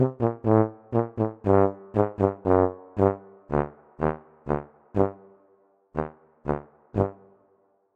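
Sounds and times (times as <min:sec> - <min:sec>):
French horn playing: 0:00.0 - 0:05.3.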